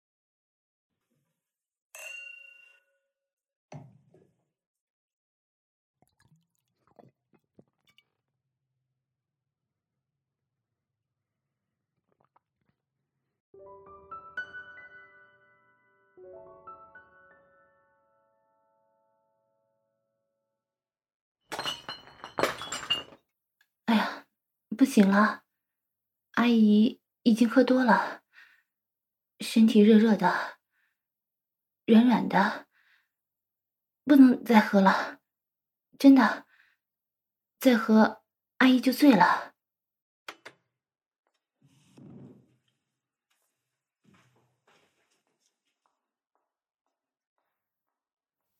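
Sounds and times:
drinking glasses clinking together in a toast: 2.0s - 3.0s, 21.5s - 23.2s
glassy rattling: 21.5s - 23.2s
speech: 24.8s - 25.4s, 26.4s - 28.2s, 29.4s - 30.6s, 31.9s - 32.6s, 34.1s - 35.2s, 36.0s - 36.4s, 37.6s - 39.5s.

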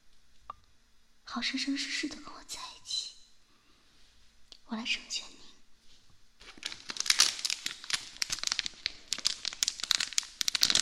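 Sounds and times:
speech: 1.3s - 2.7s, 4.7s - 5.4s
plastic bag crinkling: 6.4s - 10.8s.

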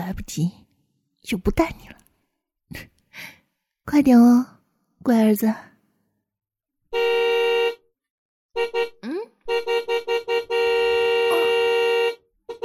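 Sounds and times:
speech: 0.1s - 0.6s, 1.2s - 2.0s, 2.7s - 5.7s, 6.9s - 7.5s, 8.6s - 10.1s
car horn honking: 6.9s - 7.8s, 8.6s - 12.6s.

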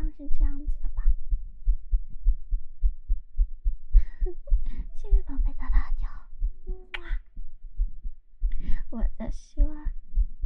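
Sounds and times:
rapid heartbeat in deep pulses: 0.0s - 10.4s.

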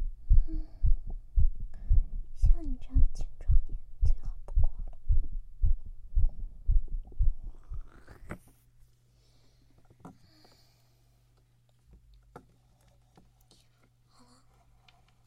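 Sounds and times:
fast strong heartbeat: 0.0s - 8.0s
steady low hum: 0.0s - 8.4s.

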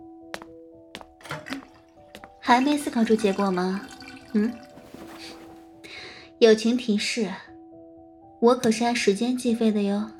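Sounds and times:
water pouring into a cup: 1.2s - 5.5s
speech: 2.5s - 4.7s, 6.4s - 7.5s, 8.4s - 10.1s.

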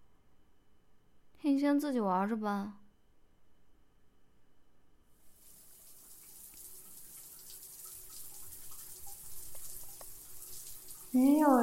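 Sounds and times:
speech: 1.4s - 2.8s, 11.1s - 11.6s
shower water spray hissing: 5.3s - 11.6s.

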